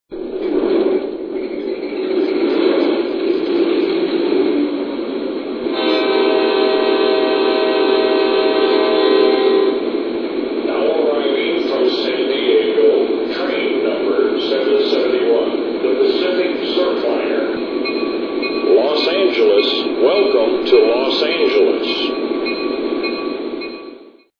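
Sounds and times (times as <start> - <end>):
F59PHI trains: 0.1 - 24.3.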